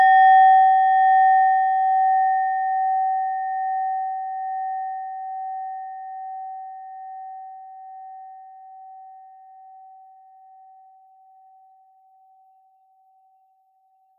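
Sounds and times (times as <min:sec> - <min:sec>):
singing bowl from Nepal: 0:00.0 - 0:14.1.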